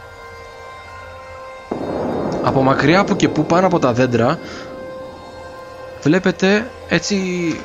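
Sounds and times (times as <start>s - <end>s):
broad rolling rumble after an explosion: 1.6s - 7.6s
distant explosive boom of fire explosions: 1.7s - 7.2s
steady low hum: 1.7s - 7.4s
speech: 2.4s - 4.7s, 6.0s - 7.6s.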